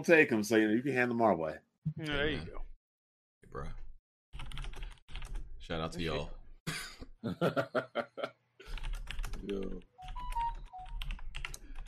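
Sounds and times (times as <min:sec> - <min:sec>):
speech: 0:00.0 - 0:02.6, 0:05.7 - 0:06.4, 0:07.2 - 0:08.4, 0:09.4 - 0:09.9
loud clicky computer keyboard typing: 0:04.4 - 0:05.4, 0:08.6 - 0:11.8
laughter: 0:06.7 - 0:08.3
faint tonal beeps: 0:10.0 - 0:11.1.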